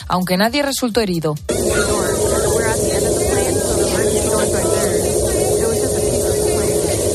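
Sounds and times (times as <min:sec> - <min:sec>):
speech: 0:00.1 - 0:02.2
faint indistinct voices in an airliner cabin: 0:01.5 - 0:07.1
low droning engine hum inside an airliner cabin: 0:01.5 - 0:07.1
roar of wind inside an airliner cabin after a fuselage blowout: 0:01.5 - 0:07.1.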